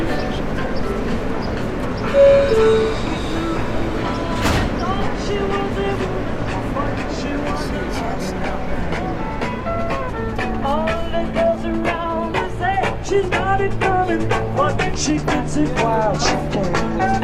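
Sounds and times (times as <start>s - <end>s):
faint voices murmuring in metro station: 0.0s - 17.2s
subway train rumbling through metro station in New York: 0.0s - 17.2s.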